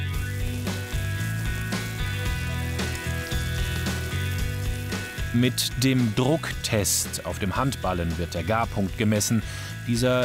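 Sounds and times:
unseasoned steak sizzling in a well-heated pan: 0.0 - 7.2
low steady music: 0.0 - 10.2
speech: 5.3 - 10.2.

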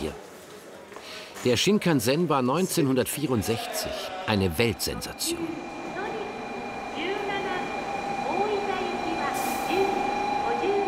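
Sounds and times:
speech: 1.4 - 5.8
people's voices murmuring on station platform: 3.1 - 10.8
train pulling into a long-distance station platform: 4.7 - 10.8.

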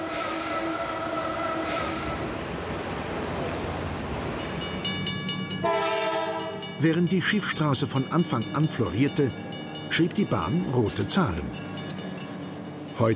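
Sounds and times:
rack railway locomotive rumbling along the track: 0.0 - 13.1
speech: 6.8 - 11.7.

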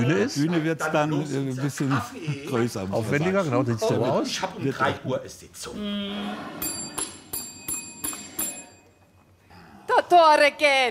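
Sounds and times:
speech: 0.0 - 6.8, 10.1 - 10.9
metallic bell being struck: 6.6 - 9.1.

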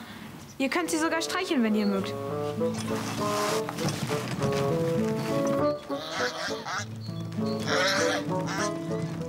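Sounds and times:
speech: 0.6 - 9.0
agitated flock of geese honking: 5.2 - 9.2.

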